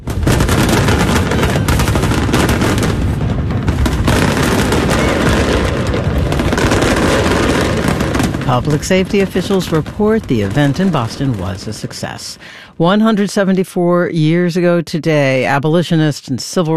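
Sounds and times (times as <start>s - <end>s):
fireworks display explosions with booms and crackling pops: 0.0s - 13.2s
speech: 8.5s - 16.7s.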